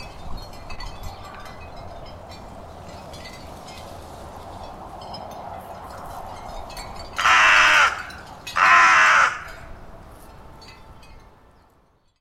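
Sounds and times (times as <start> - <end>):
carrion crow Corvus corone cawing: 7.2 - 9.7.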